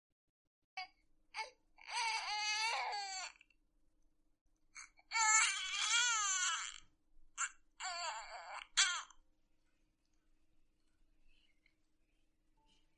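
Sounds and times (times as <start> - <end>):
infant crying: 1.4 - 3.4, 4.8 - 6.8, 7.4 - 9.1.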